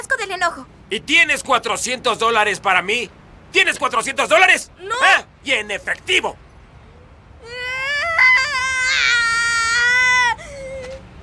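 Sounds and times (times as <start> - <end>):
speech: 0.4 - 6.4
baby crying: 7.4 - 11.0.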